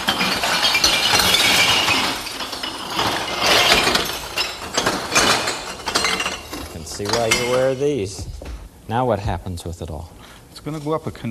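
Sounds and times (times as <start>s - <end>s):
clear glass bottles dumped into a recycling bin holding glass: 0.0s - 8.0s
speech: 7.0s - 11.3s.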